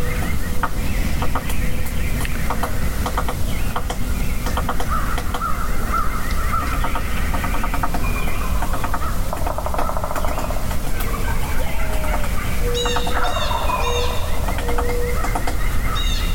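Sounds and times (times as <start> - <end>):
birds chirping and whistling: 0.0 - 16.3
steady outdoor noise: 0.0 - 16.3
wild turkey gobbler gobbling: 4.7 - 16.3.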